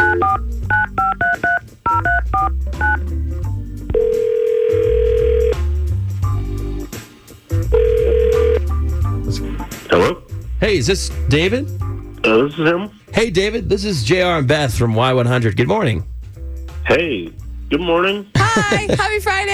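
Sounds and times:
telephone keypad beeps: 0.0 - 3.0, 3.9 - 5.3
telephone ringback tones: 0.0 - 3.0, 3.9 - 5.7, 7.7 - 8.7
low music bed: 0.0 - 19.5
speech: 10.7 - 16.1, 16.9 - 19.5
laughter: 18.4 - 19.5.

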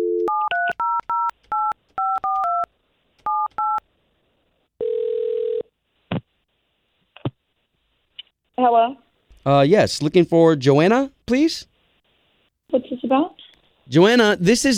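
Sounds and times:
long buzzing telephone ring tone: 0.0 - 2.7, 4.8 - 5.7
telephone number dialed with DTMF touch-tones: 0.0 - 2.7, 3.3 - 3.8
speech: 8.6 - 11.7, 12.7 - 14.7.

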